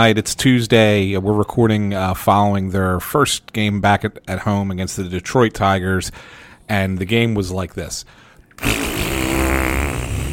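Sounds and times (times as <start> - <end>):
speech: 0.0 - 9.1
fart noise: 8.6 - 10.3.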